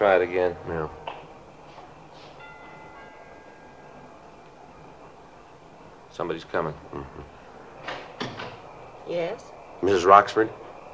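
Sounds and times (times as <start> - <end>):
speech: 0.0 - 1.1, 6.2 - 7.4, 9.1 - 10.6
steady hiss: 0.0 - 10.9
doorbell chime at a house above the Sunset Strip: 2.4 - 4.1.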